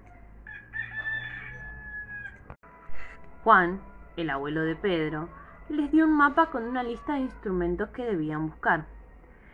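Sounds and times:
rooster crowing: 0.0s - 3.2s
speech: 3.4s - 9.0s.

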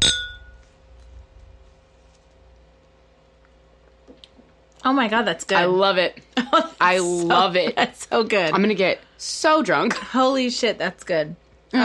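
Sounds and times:
glasses clinking in a toast in Las Vegas: 0.0s - 0.6s
speech: 4.8s - 11.8s.

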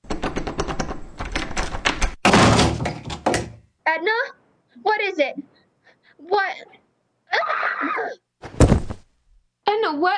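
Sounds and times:
stuck unlocked door rattling as people force it open: 0.0s - 3.6s
door bursting open with a crash and scrape: 2.0s - 3.6s, 8.5s - 9.0s
speech: 3.9s - 5.5s, 6.2s - 8.2s, 9.7s - 10.1s.

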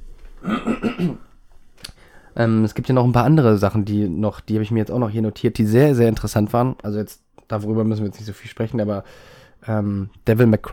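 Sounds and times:
person coughing: 0.4s - 1.3s
speech: 2.4s - 10.7s.

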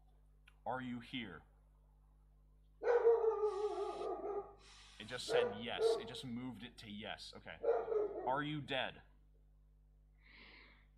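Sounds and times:
speech: 0.7s - 1.5s, 4.4s - 9.1s
dog barking angrily: 2.8s - 6.2s, 7.6s - 8.4s.

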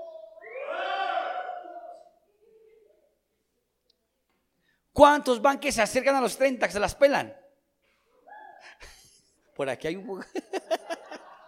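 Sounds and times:
audience of people over 30 shouting with joy: 0.0s - 2.1s
speech: 5.0s - 7.4s, 9.6s - 10.7s
laughter: 10.1s - 11.4s.

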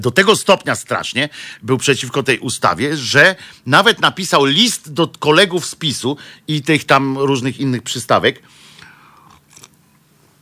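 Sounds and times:
speech: 0.0s - 8.6s
faint mouth sounds: 8.8s - 10.4s
slurping a drink: 9.2s - 9.8s.

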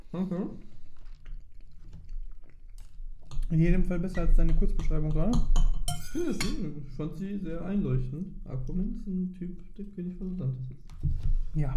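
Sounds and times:
person chewing homemade food: 0.0s - 3.5s
speech: 0.1s - 0.7s, 3.5s - 11.7s.

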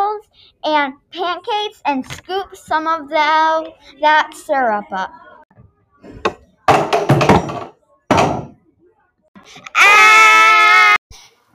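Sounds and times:
speech: 0.6s - 5.2s
knocking: 6.2s - 8.6s
child screaming: 9.6s - 11.0s.

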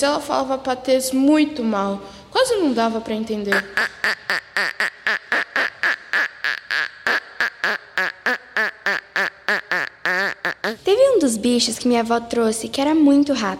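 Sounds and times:
speech: 0.0s - 4.9s, 11.2s - 13.5s
duck quacking: 3.5s - 10.8s.

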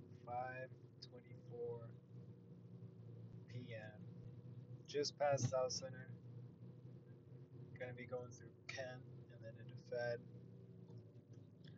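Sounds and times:
car rolling along in peak freeway traffic on I-5 South past South Center: 0.0s - 11.7s
speech: 0.3s - 2.4s, 3.5s - 4.2s, 4.9s - 6.2s, 7.8s - 10.3s.

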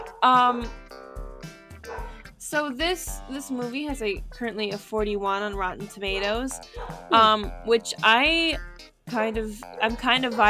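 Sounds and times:
dog barking: 0.0s - 0.2s, 1.8s - 2.2s, 6.6s - 7.2s
speech: 0.2s - 0.8s, 2.4s - 10.4s.

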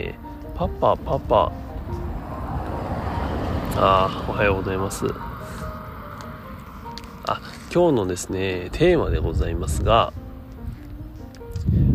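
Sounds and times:
speech: 0.0s - 2.0s, 3.8s - 5.3s, 7.3s - 10.2s
car driving past: 1.2s - 9.0s.

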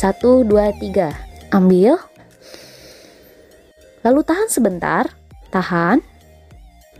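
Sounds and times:
speech: 0.0s - 2.1s, 4.0s - 6.1s
slow deep inhalation through the nose in a guided breathing exercise: 2.4s - 3.7s.

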